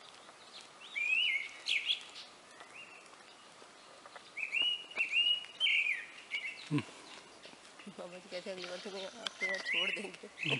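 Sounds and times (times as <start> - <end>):
grey-winged blackbird whistled song with warbled flourish: 0.4 - 3.1, 4.3 - 7.2, 8.6 - 10.5.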